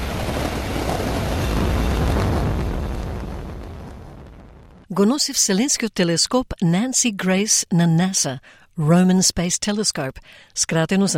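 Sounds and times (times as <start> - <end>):
SpaceX Falcon Heavy rocket engines roaring at liftoff from Kennedy Space Center in Florida: 0.0 - 4.9
speech: 5.0 - 11.1.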